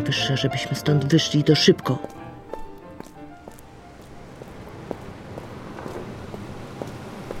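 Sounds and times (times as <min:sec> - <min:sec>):
speech: 0:00.1 - 0:02.2
quick hurried footsteps: 0:01.3 - 0:07.3.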